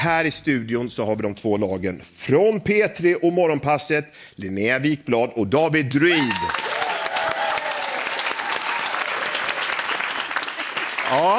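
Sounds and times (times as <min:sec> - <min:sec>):
speech: 0:00.0 - 0:06.6, 0:11.1 - 0:11.3
man clapping hands in a radio studio: 0:06.3 - 0:11.3.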